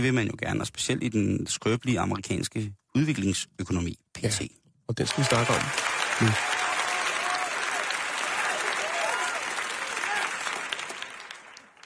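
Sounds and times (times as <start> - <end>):
speech: 0.0 - 6.6
dense crowd applause: 5.0 - 11.8.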